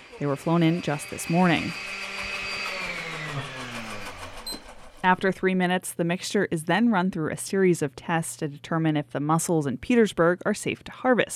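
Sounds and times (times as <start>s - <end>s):
blender motor blending mussel samples at a shellfish testing lab: 0.0s - 5.3s
speech: 0.2s - 2.0s, 5.0s - 11.3s.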